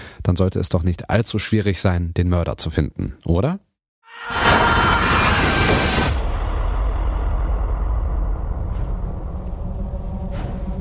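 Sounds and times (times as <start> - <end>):
speech: 0.3 - 4.4
train wheels squealing on rails: 4.1 - 6.4
moving train rumbling: 4.3 - 10.7.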